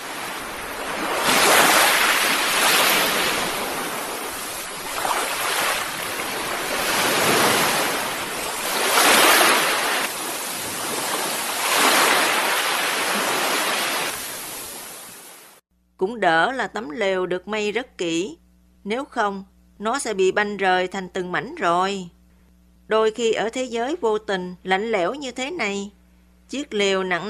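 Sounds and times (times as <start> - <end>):
constant roar of surf: 0.0 - 15.3
ocean waves crashing against rocks below a beach during a night storm: 0.0 - 15.5
gale-force wind during a night storm: 0.0 - 15.6
speech: 16.2 - 22.2, 22.9 - 27.2.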